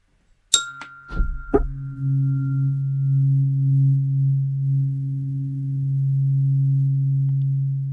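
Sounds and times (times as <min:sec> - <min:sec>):
Om tuning fork tuned to 136.1 Hz ringing: 0:00.5 - 0:07.3.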